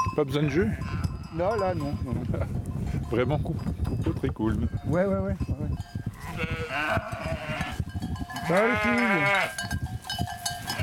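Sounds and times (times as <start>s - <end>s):
speech: 0.2s - 7.5s, 8.5s - 9.8s
flock of ewes and lambs bleating: 6.2s - 7.8s, 8.4s - 9.6s.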